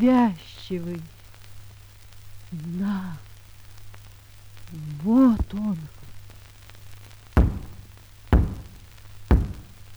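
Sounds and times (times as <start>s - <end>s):
speech: 0.0s - 1.2s, 2.5s - 3.3s, 4.7s - 6.0s
faint steady hum: 0.0s - 9.9s
heavy knocks on a door: 7.4s - 9.8s.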